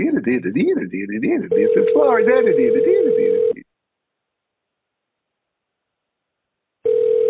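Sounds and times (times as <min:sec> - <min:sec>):
person talking: 0:00.0 - 0:03.6
electronic telephone ringback tone while waiting on a call: 0:01.5 - 0:03.6, 0:06.9 - 0:07.2.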